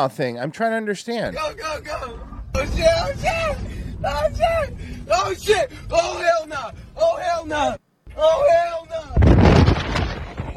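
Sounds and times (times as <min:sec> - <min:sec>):
speech: 0:00.0 - 0:09.4
car veering off the road with rough rumbling: 0:01.2 - 0:08.6.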